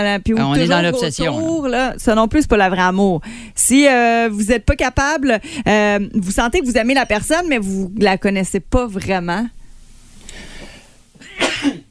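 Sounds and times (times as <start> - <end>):
speech: 0.0 - 9.6
person sneezing: 11.2 - 11.8.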